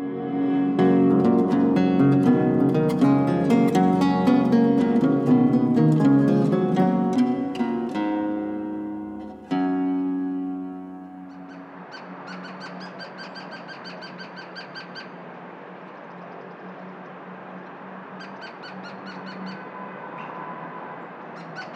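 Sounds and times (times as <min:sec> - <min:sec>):
outdoor noise: 0:00.0 - 0:21.7
Gila woodpecker calling: 0:11.2 - 0:15.2.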